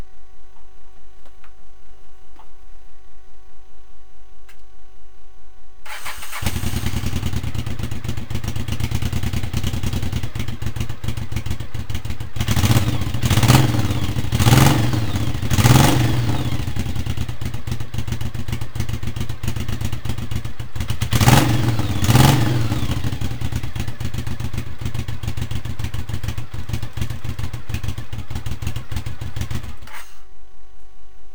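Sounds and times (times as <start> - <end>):
Shadow exhaust: 5.9 - 30.2.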